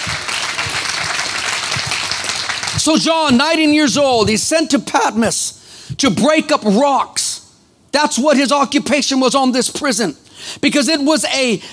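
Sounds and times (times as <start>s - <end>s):
audience clapping hands: 0.0s - 2.8s
speech: 2.8s - 7.3s, 7.9s - 11.7s.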